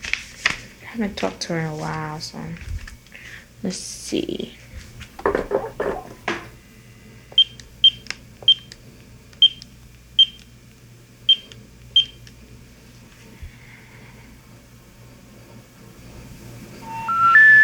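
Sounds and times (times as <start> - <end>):
speech: 1.0 - 2.7, 3.6 - 4.7
phone handling clatter: 4.9 - 6.6
phone keypad beeps as a number is dialed: 7.4 - 8.7, 9.4 - 9.6, 10.2 - 10.4, 11.3 - 12.2
three-note rising tone sequence: 16.8 - 17.6.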